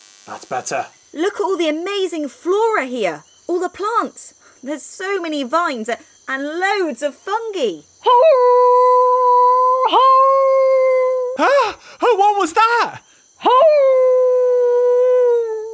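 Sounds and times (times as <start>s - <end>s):
speech: 0.2s - 9.0s, 9.9s - 10.5s, 11.4s - 14.2s
animal howling: 8.0s - 11.6s, 13.4s - 15.7s.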